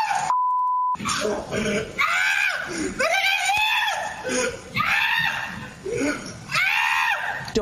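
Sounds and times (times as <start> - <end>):
man screaming while running from a goat: 0.0 - 0.3, 1.0 - 5.6, 6.5 - 7.4
short steady beep: 0.3 - 1.0.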